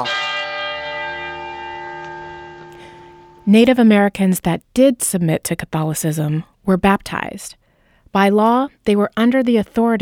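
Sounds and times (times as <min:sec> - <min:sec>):
church bells ringing: 0:00.0 - 0:03.6
speech: 0:03.5 - 0:09.9.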